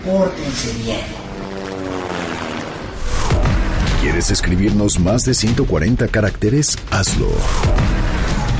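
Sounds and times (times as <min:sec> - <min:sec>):
speech: 0:00.0 - 0:02.1, 0:04.0 - 0:08.4
helicopter flying overhead: 0:00.1 - 0:04.0.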